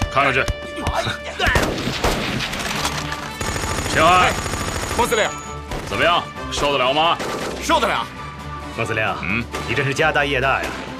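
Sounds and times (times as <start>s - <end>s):
speech: 0.2s - 2.6s, 3.9s - 8.2s, 8.8s - 10.9s
live-ammunition gunfire at a military shooting range: 1.6s - 6.1s.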